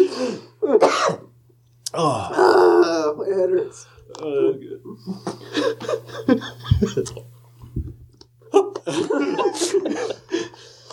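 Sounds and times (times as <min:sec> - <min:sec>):
harsh cough: 0:00.7 - 0:01.3
speech: 0:02.0 - 0:02.4, 0:03.3 - 0:07.3
laughter: 0:05.0 - 0:07.3, 0:08.5 - 0:10.9.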